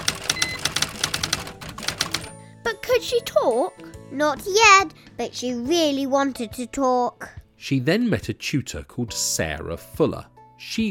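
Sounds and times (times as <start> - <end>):
typewriter keys clacking: 0.0 - 2.3
speech: 2.6 - 10.8.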